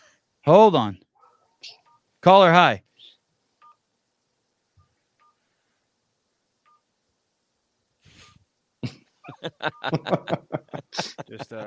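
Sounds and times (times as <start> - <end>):
speech: 0.4 - 1.0, 1.6 - 2.8, 8.8 - 11.6
phone keypad tones from buttons pressed: 3.6 - 3.8, 6.6 - 6.9
laughter: 9.3 - 11.6.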